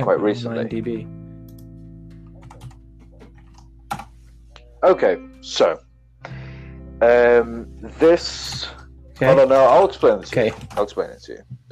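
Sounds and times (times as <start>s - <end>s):
speech: 0.0s - 1.2s, 4.8s - 6.4s, 7.0s - 11.7s
typing on a computer keyboard: 2.3s - 4.1s.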